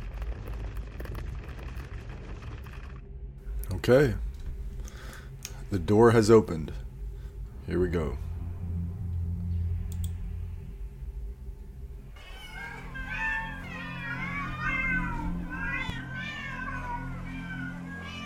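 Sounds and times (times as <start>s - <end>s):
low steady rumble: 0.0s - 18.2s
speech: 3.7s - 4.2s, 5.7s - 6.8s, 7.7s - 8.2s
many cats meowing and yowling: 12.2s - 18.2s.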